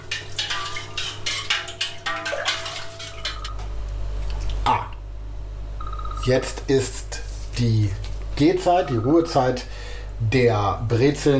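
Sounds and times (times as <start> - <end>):
spoon stirring lye solution in a bowl: 0.0 - 3.7
faint ringing tone: 5.8 - 6.6, 8.6 - 9.7
speech: 6.3 - 7.0, 7.6 - 11.3.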